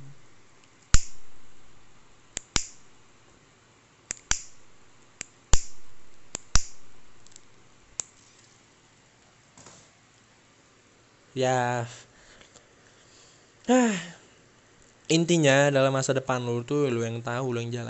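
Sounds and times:
lighter being flicked: 0.9 - 1.4, 2.4 - 2.8, 4.1 - 4.6, 5.2 - 7.4
speech: 11.4 - 12.1, 13.7 - 14.2, 15.1 - 17.8.

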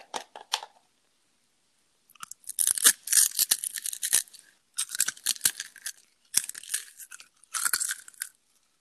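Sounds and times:
crunchy food chewed loudly with mouth open: 2.2 - 8.4.

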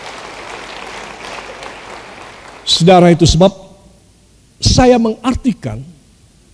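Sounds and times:
audience applauding: 0.0 - 3.0
speech: 2.7 - 3.6, 4.8 - 6.0.

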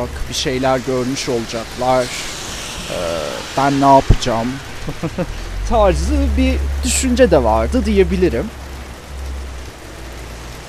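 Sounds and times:
speech: 0.0 - 8.6
steady rain falling outside: 0.0 - 10.6
laughter: 4.8 - 5.6.

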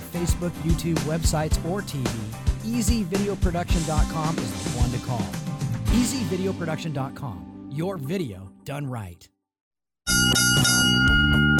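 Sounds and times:
speech: 0.2 - 9.3
boxing bell ringing: 10.1 - 11.5.

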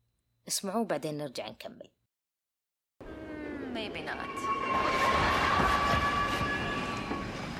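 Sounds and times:
speech: 0.5 - 2.0, 3.8 - 5.8
subway train slowing to a stop: 3.1 - 7.5.

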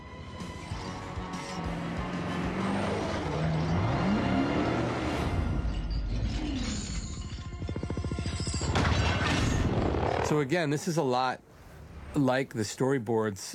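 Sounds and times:
car engines roaring in a film car chase: 0.4 - 6.6
rumbling mechanical noise: 5.2 - 10.5
speech: 10.3 - 11.5, 12.1 - 13.5.

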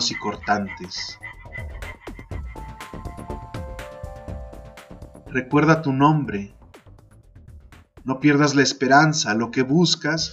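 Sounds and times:
speech: 0.0 - 1.3, 5.3 - 6.6, 8.0 - 10.3
dense chorus of frogs and toads croaking: 0.0 - 3.2.

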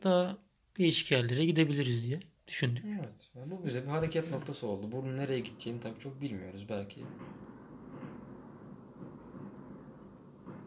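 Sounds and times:
speech: 0.0 - 7.6
fireworks booming: 3.8 - 10.6.

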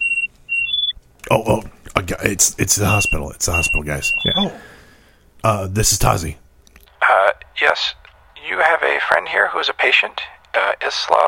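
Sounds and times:
communicator beeping with an incoming call: 0.0 - 1.0, 2.8 - 4.5
speech: 1.3 - 4.7, 5.4 - 6.4, 7.6 - 8.0, 8.6 - 11.2.

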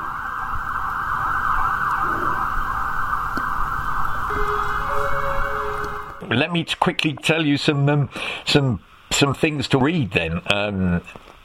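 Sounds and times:
emergency vehicle siren: 0.0 - 6.3
speech: 6.3 - 11.4.

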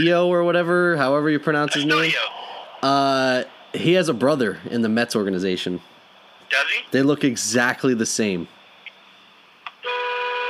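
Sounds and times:
speech: 0.0 - 5.9, 6.5 - 8.6
car horn honking in traffic: 9.8 - 10.4.

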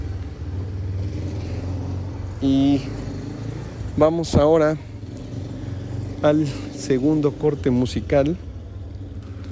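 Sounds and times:
motorcycle engine rumbling as it passes: 0.0 - 9.4
speech: 2.4 - 3.0, 4.0 - 4.9, 6.2 - 8.4.

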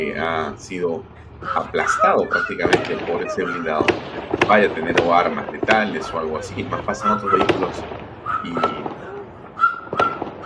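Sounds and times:
speech: 0.0 - 8.8
noisy outdoor noise: 0.0 - 10.4
laughter: 0.2 - 7.8
gunshots: 2.0 - 10.4.

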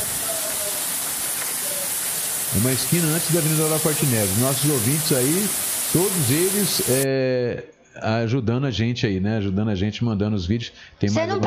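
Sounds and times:
heavy rain heard from inside a house: 0.0 - 7.1
speech: 2.5 - 11.4.

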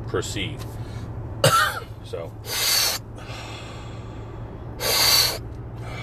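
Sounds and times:
speech: 0.1 - 1.0, 2.1 - 2.7
forceful breathy rushes of air from a deep-breathing exercise: 2.5 - 6.0.

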